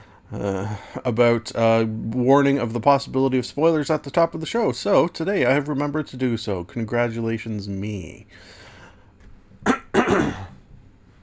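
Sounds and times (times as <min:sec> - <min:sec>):
speech: 0:00.3 - 0:08.6, 0:09.6 - 0:10.4
person clearing throat: 0:09.6 - 0:10.6.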